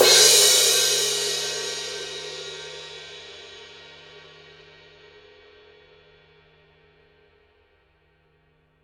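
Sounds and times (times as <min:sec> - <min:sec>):
crash cymbal edge hit: 0:00.0 - 0:03.4.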